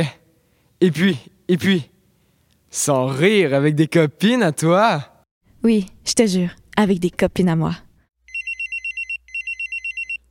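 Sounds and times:
speech: 0:00.8 - 0:01.9, 0:02.7 - 0:07.8
electronic alarm beeping: 0:08.3 - 0:10.2.

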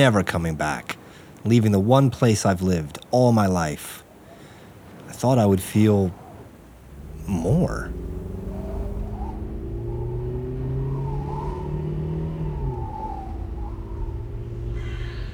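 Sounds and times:
speech: 0:00.0 - 0:04.0, 0:05.2 - 0:06.2, 0:07.3 - 0:08.2
car engine roaring at high speed: 0:06.2 - 0:15.3.

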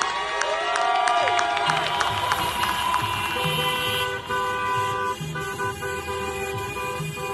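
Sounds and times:
faint crowd cheering: 0:00.0 - 0:04.3
car horns honking in a protest car procession: 0:01.6 - 0:07.3
rumble of slow-moving traffic: 0:01.8 - 0:07.3.

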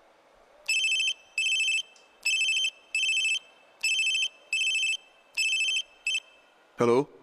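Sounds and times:
telephone ringing during an outgoing call: 0:00.7 - 0:06.4
speech: 0:06.8 - 0:07.2.

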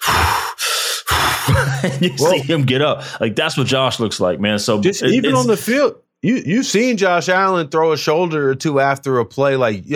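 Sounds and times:
person imitating hard heavy gasping breathing: 0:00.0 - 0:02.4
laughter: 0:01.4 - 0:03.0
speech: 0:01.5 - 0:09.9.

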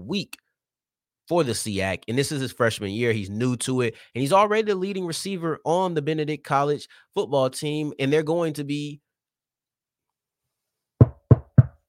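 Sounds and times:
speech: 0:00.1 - 0:00.4, 0:01.3 - 0:09.0
sharp hollow knocks on a wooden surface: 0:11.0 - 0:11.8.

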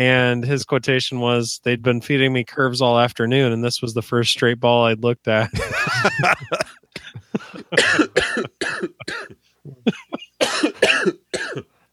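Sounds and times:
speech: 0:00.0 - 0:06.8, 0:07.5 - 0:11.6
coughing fit from laughing: 0:05.5 - 0:11.7.

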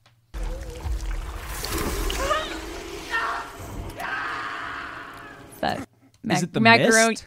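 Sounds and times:
macaroni and cheese squelching and bubbling while stirred: 0:00.4 - 0:03.6
speech: 0:06.3 - 0:07.2.

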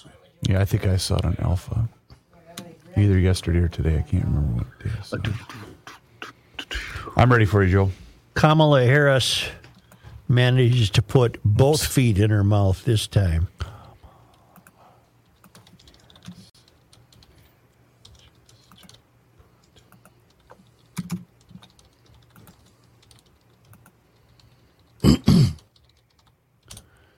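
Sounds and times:
speech: 0:00.0 - 0:02.0, 0:03.0 - 0:05.7, 0:07.2 - 0:09.6, 0:10.3 - 0:13.6
throat clearing or cough: 0:05.2 - 0:06.0, 0:25.0 - 0:25.7
soft irregular typing on a computer keyboard: 0:14.6 - 0:17.4, 0:18.0 - 0:19.0, 0:19.6 - 0:25.0, 0:25.6 - 0:27.0.

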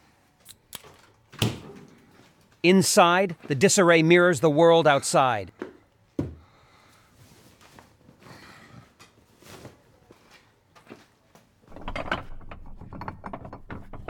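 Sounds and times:
speech: 0:02.6 - 0:05.6
metallic clicks and creaky turning of a shower knob: 0:11.7 - 0:14.0.

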